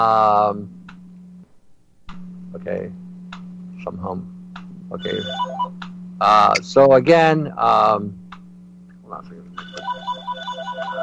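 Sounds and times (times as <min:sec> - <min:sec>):
speech: 0:00.0 - 0:00.8, 0:02.5 - 0:03.0, 0:03.8 - 0:08.2, 0:09.1 - 0:09.4
landline telephone ringing in an office: 0:05.0 - 0:05.7, 0:09.6 - 0:11.0.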